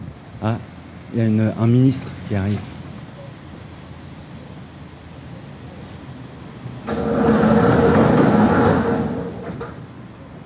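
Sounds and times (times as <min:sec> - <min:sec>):
speech: 0:00.4 - 0:02.8
parking gate opening with a mechanical hum: 0:06.6 - 0:09.9
car rolling through a parking gate: 0:06.8 - 0:10.0.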